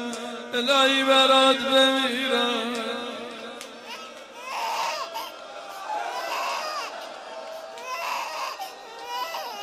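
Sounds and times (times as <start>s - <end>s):
speech: 0.6s - 2.8s
murmur of voices: 3.5s - 9.6s
baby crying: 3.8s - 9.6s.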